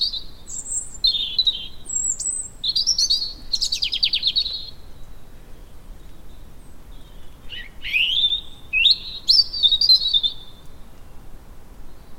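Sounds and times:
European robin Erithacus rubecula song of thin high whistles and buzzy trills: 0.0 - 12.1.

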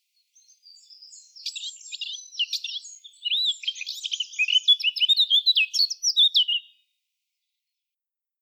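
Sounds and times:
Eurasian blackcap Sylvia atricapilla song with scratchy twittering and fluty warbles: 0.4 - 6.8.

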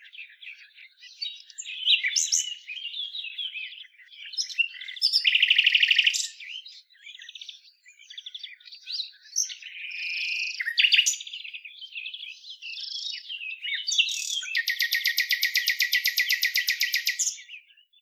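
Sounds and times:
common nightingale Luscinia megarhynchos singing: 0.0 - 18.0
common nightingale fast evenly pulsed trill: 14.1 - 17.4.

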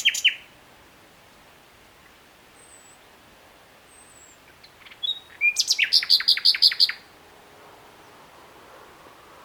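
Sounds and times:
Common nightingale song, Luscinia megarhynchos: 0.0 - 0.6, 1.3 - 7.2.

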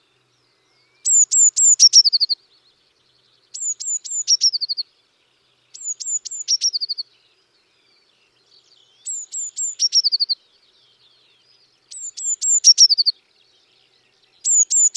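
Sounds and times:
Eurasian Blue Tit Cyanistes caeruleus song: 0.0 - 14.9.

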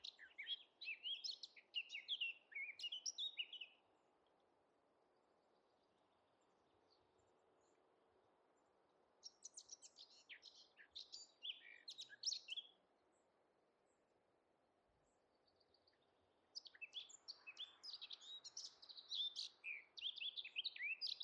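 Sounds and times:
Eurasian blackcap song: 0.0 - 3.8, 9.2 - 12.8, 15.9 - 21.2.

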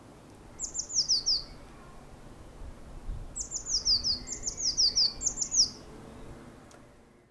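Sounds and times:
soft steady background hiss: 0.0 - 7.2
Eurasian blue tit singing high thin downslurred notes: 0.5 - 1.8, 3.2 - 6.5.

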